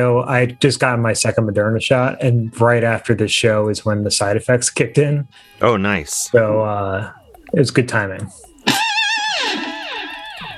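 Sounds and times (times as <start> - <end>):
speech: 0.0 - 8.8
distorted electric guitar lick: 5.4 - 10.5.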